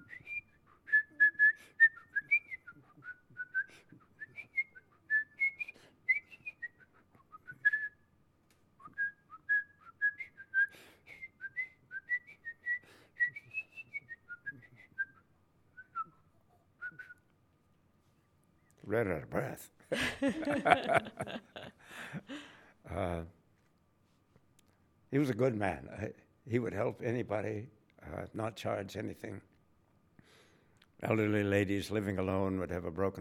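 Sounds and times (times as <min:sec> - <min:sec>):
person whistling a lilting tune: 0:00.0 - 0:08.0, 0:08.8 - 0:17.2
speech: 0:18.9 - 0:21.5, 0:23.0 - 0:23.4, 0:25.1 - 0:29.5, 0:31.0 - 0:33.1
laughter: 0:19.9 - 0:22.4.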